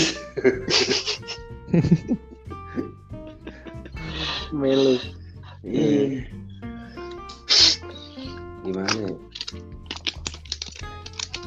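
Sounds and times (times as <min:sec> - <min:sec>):
laughter: 0:00.0 - 0:11.4
speech: 0:01.7 - 0:02.2, 0:04.6 - 0:05.1
rolling a hand-rolled cigarette by hand: 0:07.1 - 0:11.4.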